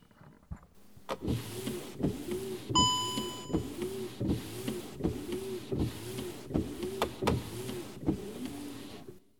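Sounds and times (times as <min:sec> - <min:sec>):
car windshield wipers sweeping back and forth: 0:00.9 - 0:09.2
brief chime: 0:02.8 - 0:03.6.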